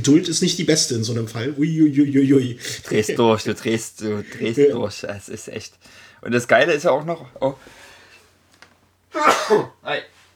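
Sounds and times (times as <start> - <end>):
speech: 0.0 - 7.8, 9.1 - 10.1
sneeze: 9.1 - 9.8.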